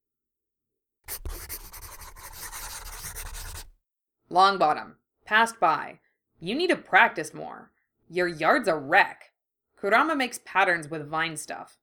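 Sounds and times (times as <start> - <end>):
pencil scribbling rapidly across paper: 1.1 - 3.7
speech: 4.3 - 11.8.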